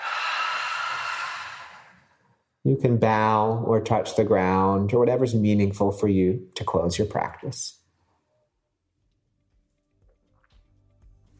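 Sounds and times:
long deep breath out: 0.0s - 2.4s
speech: 2.6s - 7.8s.

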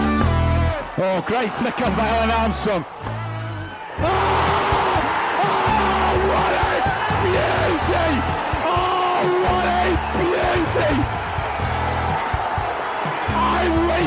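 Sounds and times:
noisy crowd with overlapping yells and shouts: 0.2s - 14.0s
several voices screaming and whooping excitedly: 0.3s - 14.0s
speech: 1.0s - 3.1s, 4.0s - 4.2s.

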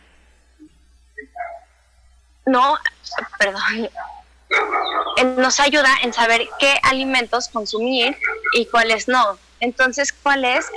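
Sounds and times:
escaped dog giving short high yips and barks: 1.3s - 1.7s, 4.0s - 5.2s, 8.1s - 8.7s
speech: 2.5s - 4.1s, 4.6s - 10.7s.

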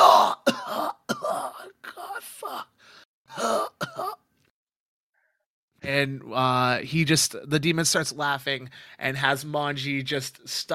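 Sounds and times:
person imitating a character coughing up blood: 0.0s - 2.7s, 3.3s - 4.2s
speech: 5.9s - 10.7s.

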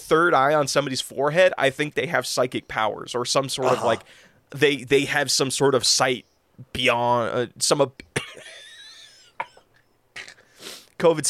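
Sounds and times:
speech: 0.1s - 8.5s, 11.0s - 11.2s
person coughing: 3.6s - 4.1s
strained wheezy vocal sound: 3.6s - 4.2s.

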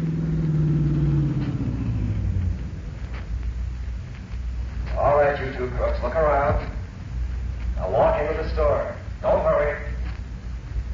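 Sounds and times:
car engine rumbling as the vehicle pulls up and idles: 0.0s - 10.9s.

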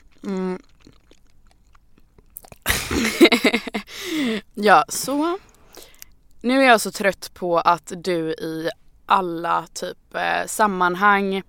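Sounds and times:
person chewing food: 0.0s - 3.0s
person humming: 0.2s - 0.6s
speech: 4.6s - 5.5s, 6.4s - 11.4s.

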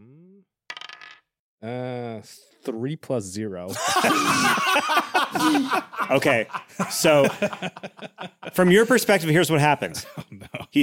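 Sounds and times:
physical die tossed onto a table during a tabletop role-playing game: 0.7s - 1.2s
speech: 1.6s - 10.2s
laughter: 3.7s - 10.8s.

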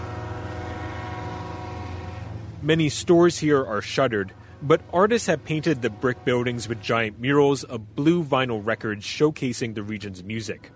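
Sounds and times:
sustained tonal bands like a horn: 0.0s - 3.6s, 4.2s - 7.7s
freight train passing on rail line: 0.0s - 10.7s
speech: 2.6s - 10.7s.

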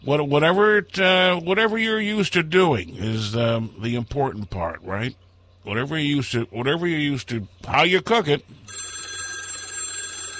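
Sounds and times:
speech: 0.0s - 8.6s
telephone bell ringing with an electronic trill: 8.6s - 10.3s.

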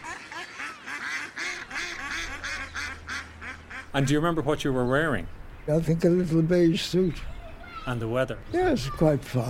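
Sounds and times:
ducks quacking with nasal calls: 0.0s - 4.1s
low hum of outdoor background: 0.0s - 9.4s
speech: 3.9s - 7.3s, 7.9s - 9.4s.

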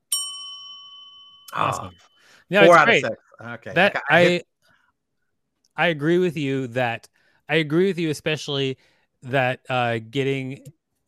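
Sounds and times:
bright bell ding: 0.0s - 3.0s
speech: 1.5s - 4.5s, 5.8s - 10.8s.

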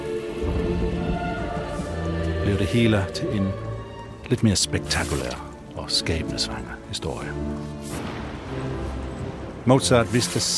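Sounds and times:
deep rumble of thunder: 0.0s - 3.9s, 7.9s - 10.5s
heavy rain pouring: 0.0s - 4.2s, 7.5s - 10.5s
speech: 2.5s - 3.7s, 4.3s - 9.0s, 9.6s - 10.5s.

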